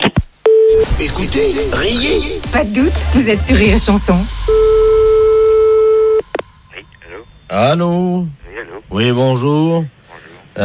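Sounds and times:
speech: 0.7s - 4.7s, 7.5s - 10.0s
short blips: 4.2s - 7.7s
steady mid-pitched telephone tone while the police emergency number is dialed: 4.4s - 7.6s.

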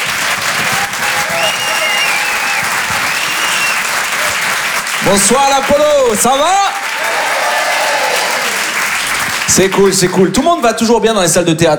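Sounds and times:
high whistles from a theatre audience: 0.0s - 4.9s
theatre audience applauding a comedian: 0.0s - 11.4s
speech: 5.1s - 6.8s, 9.5s - 11.7s.

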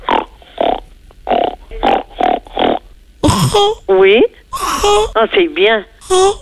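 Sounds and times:
child snorting through the nose mimicking a pig's grunt: 0.2s - 3.8s, 4.5s - 5.2s
speech: 3.4s - 6.4s.

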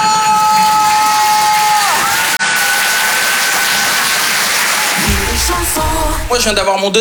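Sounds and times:
whoops and shouts from the crowd: 0.0s - 5.5s
dense crowd cheering and applauding: 0.0s - 6.7s
speech: 6.3s - 6.9s.

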